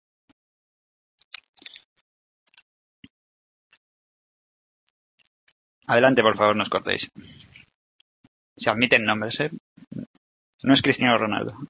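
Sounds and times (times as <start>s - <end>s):
hard candy wrapper crinkling as it is unwrapped: 1.2s - 1.8s
speech: 5.9s - 7.6s, 8.6s - 10.0s, 10.6s - 11.6s.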